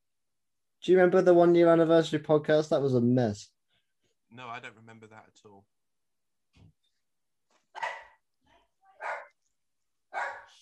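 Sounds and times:
speech: 0.8s - 3.6s, 4.3s - 5.8s
dog barking: 7.8s - 8.2s, 9.0s - 9.4s, 10.1s - 10.6s
dog yipping: 9.0s - 9.4s, 10.1s - 10.6s.

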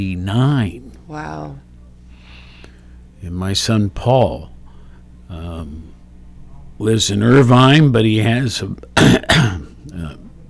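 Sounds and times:
speech: 0.0s - 1.7s, 3.2s - 4.5s, 5.3s - 6.0s, 6.8s - 10.2s
person coughing and clearing throat: 9.0s - 9.8s.

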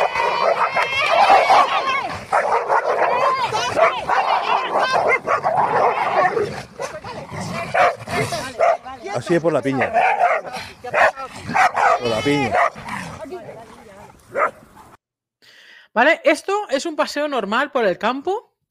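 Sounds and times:
two dogs barking, yipping and snarling in a scuffle in the countryside: 0.0s - 15.0s
speech: 9.3s - 12.8s, 16.0s - 18.5s.

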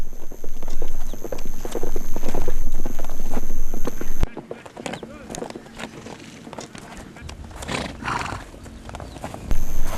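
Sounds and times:
horses galloping during lasso capture: 0.0s - 9.9s
horses whinnying during lasso capture: 7.7s - 8.5s.

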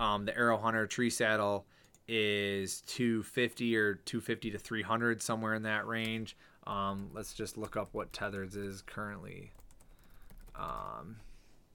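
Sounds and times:
speech: 0.0s - 9.6s, 10.6s - 11.3s
typing on a computer keyboard: 6.9s - 8.7s, 9.3s - 11.0s.

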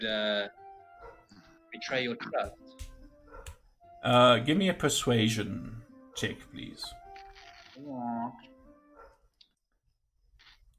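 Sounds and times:
speech: 0.0s - 0.6s, 1.8s - 2.7s, 4.0s - 7.0s, 7.8s - 8.5s
neighbor's dog barking: 1.0s - 1.3s, 3.2s - 3.6s, 8.9s - 9.3s.

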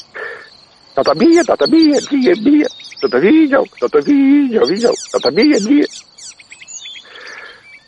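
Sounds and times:
icterine warbler singing: 0.0s - 7.8s
speech: 1.0s - 6.1s.

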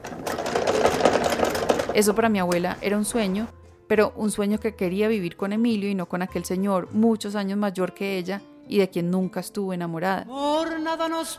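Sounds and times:
sewing machine running: 0.0s - 3.5s
speech: 2.0s - 11.3s.

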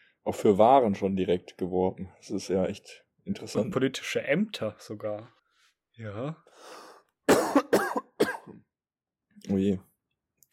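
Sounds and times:
speech: 0.2s - 5.4s, 6.0s - 7.8s, 9.4s - 9.9s
person coughing: 7.3s - 8.6s
throat clearing: 7.3s - 8.6s.

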